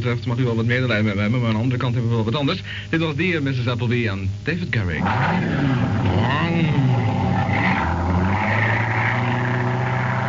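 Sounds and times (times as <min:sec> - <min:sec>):
speech: 0:00.0 - 0:07.8
heavy car engine rumbling as it passes: 0:05.0 - 0:10.2
low droning tone: 0:05.5 - 0:10.2.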